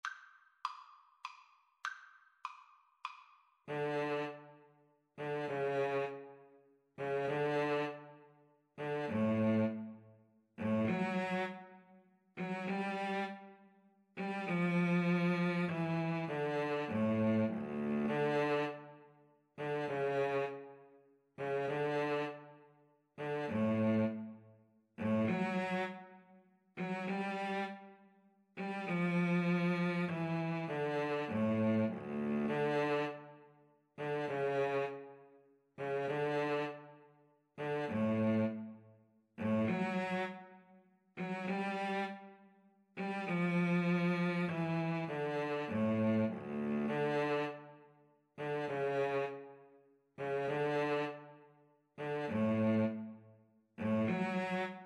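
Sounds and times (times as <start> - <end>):
violin and cello duet: 3.7 - 4.6, 5.2 - 6.4, 7.0 - 8.2, 8.8 - 10.0, 10.6 - 11.8, 12.4 - 13.6, 14.2 - 19.0, 19.6 - 20.8, 21.4 - 22.5, 23.2 - 24.4, 25.0 - 26.2, 26.8 - 28.0, 28.6 - 33.4, 34.0 - 35.2, 35.8 - 37.0, 37.6 - 38.8, 39.4 - 40.6, 41.2 - 42.4, 43.0 - 47.8, 48.4 - 49.6, 50.2 - 51.4, 52.0 - 53.2, 53.8 - 54.8.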